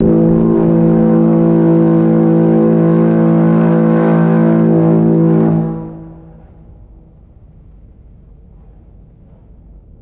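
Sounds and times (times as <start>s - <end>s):
loud buzzy ship horn blast: 0.0s - 7.1s.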